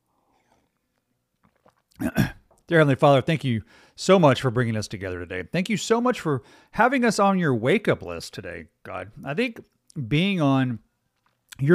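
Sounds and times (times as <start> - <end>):
slurping sip of a hot drink: 0.5 - 2.0
swallowing and mouth clicks: 0.5 - 2.7
speech: 2.0 - 10.9, 11.6 - 11.7.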